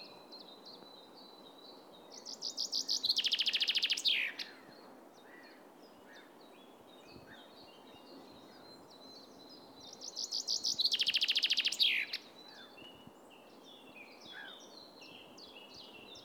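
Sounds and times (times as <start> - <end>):
Common chaffinch Fringilla coelebs singing: 2.1 - 4.6, 9.2 - 16.2.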